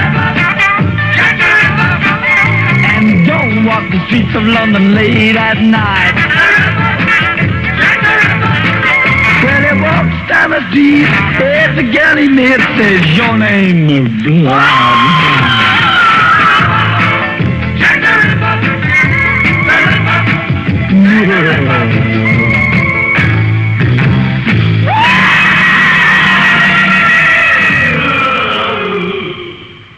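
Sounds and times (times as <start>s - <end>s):
dense distorted rock band with driving drums and bass: 0.0s - 29.9s
speech: 4.1s - 6.5s, 10.5s - 15.2s
loud sustained screaming vocals: 14.4s - 17.2s, 24.8s - 29.9s.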